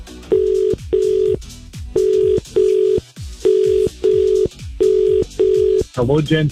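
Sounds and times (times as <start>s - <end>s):
rapid telephone ring tone on a call line: 0.3s - 1.4s, 2.0s - 5.9s
speech: 6.0s - 6.4s.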